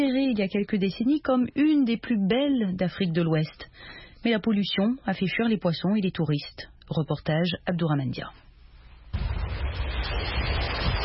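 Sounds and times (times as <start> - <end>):
speech: 0.0 - 8.4
sea waves breaking on a polluted beach near a port: 9.2 - 11.0.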